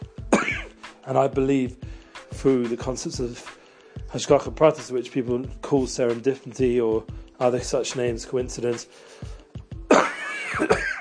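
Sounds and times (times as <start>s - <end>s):
person coughing: 0.3s - 0.8s, 9.9s - 10.9s
speech: 1.0s - 1.8s, 2.4s - 9.3s, 10.6s - 10.9s.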